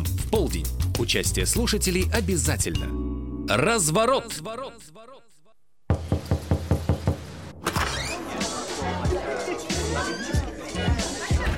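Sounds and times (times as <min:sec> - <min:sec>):
speech: 0:00.3 - 0:05.2
heavy pounding on a door: 0:05.9 - 0:07.3
laughter: 0:07.8 - 0:11.5.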